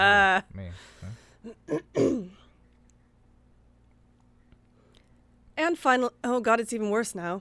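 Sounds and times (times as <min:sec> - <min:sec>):
speech: 0:00.0 - 0:00.9, 0:05.7 - 0:07.3
person clearing throat: 0:01.5 - 0:02.4.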